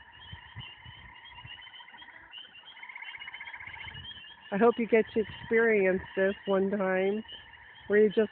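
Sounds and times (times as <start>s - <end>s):
several tree frogs trilling in chorus at night: 0.0s - 8.2s
speech: 4.5s - 8.2s.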